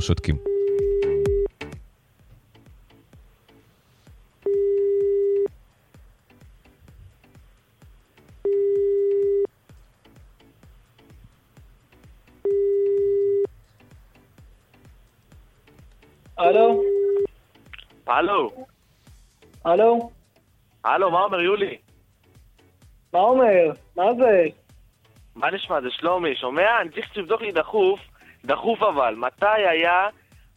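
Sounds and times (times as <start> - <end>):
speech: 0.0 - 0.5, 18.2 - 18.7, 19.6 - 20.2, 20.8 - 21.8, 23.1 - 24.6, 25.4 - 30.5
telephone ringback tone while a call is dialed: 0.4 - 1.5, 4.4 - 5.5, 8.4 - 9.5, 12.4 - 13.5, 16.6 - 17.3.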